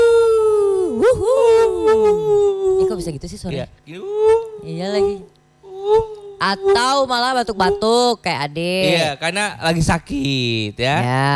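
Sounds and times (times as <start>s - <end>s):
person imitating a dog barking: 0.0s - 3.1s, 4.0s - 8.1s
speech: 3.2s - 11.3s.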